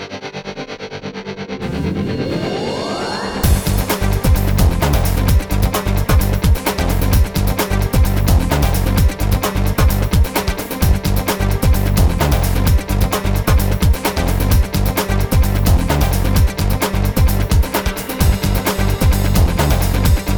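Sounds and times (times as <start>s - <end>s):
rhythmic pad for TV programme theme and advertising music: 1.5s - 20.3s.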